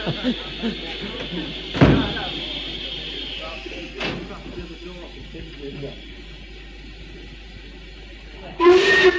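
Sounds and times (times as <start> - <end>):
laughter: 0.0 - 4.7
murmuring voices of a crowd boarding a steam train: 0.0 - 9.1
steady steam train steam hiss: 0.0 - 9.1
heavy steam train doors slamming: 1.2 - 2.6, 4.0 - 4.6
steam train whistle blasting: 8.5 - 9.1.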